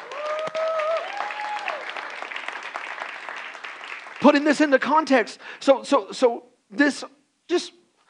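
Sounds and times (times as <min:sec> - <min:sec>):
vocal whoop or tonal cry: 0:00.0 - 0:01.9
audience applauding to praise the Lord: 0:00.0 - 0:04.8
speech: 0:04.2 - 0:07.8.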